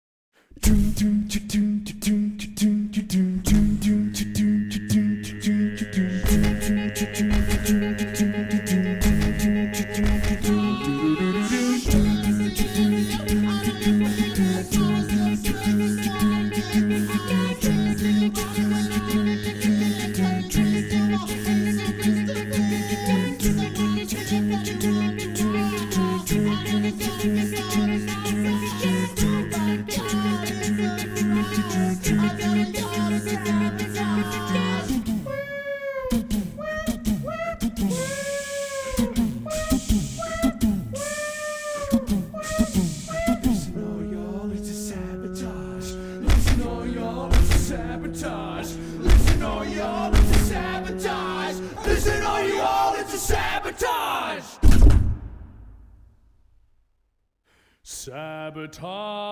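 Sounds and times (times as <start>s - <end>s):
baritone: 0.6s - 54.8s.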